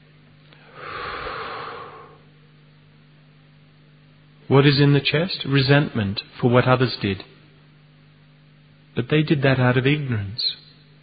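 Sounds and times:
breathing in through the nose and out through the mouth: 0:00.6 - 0:02.3
speech: 0:04.5 - 0:07.3, 0:09.0 - 0:10.6.

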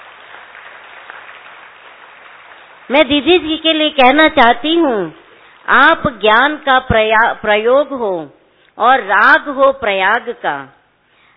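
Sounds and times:
audience applause: 0:00.0 - 0:02.9
speech: 0:02.9 - 0:10.8.

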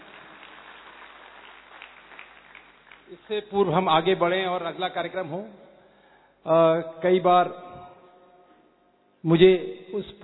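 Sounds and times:
audience applause after a stage performance: 0:00.0 - 0:03.3
speech: 0:03.1 - 0:05.7, 0:06.4 - 0:07.6, 0:09.2 - 0:10.2.

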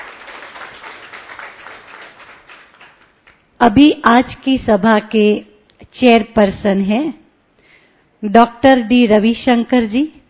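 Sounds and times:
crowd applauding: 0:00.0 - 0:03.5
speech: 0:03.6 - 0:07.2, 0:08.2 - 0:10.2.

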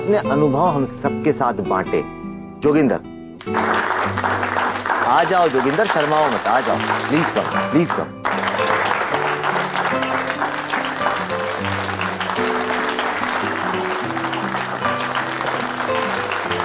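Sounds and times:
speech: 0:00.1 - 0:08.2
crowd applauding: 0:03.4 - 0:16.6.

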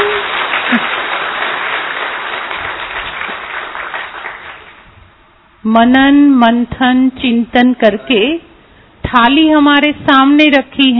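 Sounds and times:
audience applause at a gathering: 0:00.0 - 0:04.8
speech: 0:05.7 - 0:08.5, 0:09.1 - 0:10.9.

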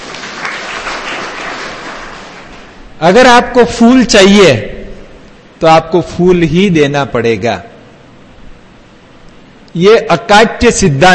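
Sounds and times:
crowd applauding: 0:00.0 - 0:02.8
speech: 0:03.0 - 0:04.7, 0:05.6 - 0:07.7, 0:09.8 - 0:11.1.

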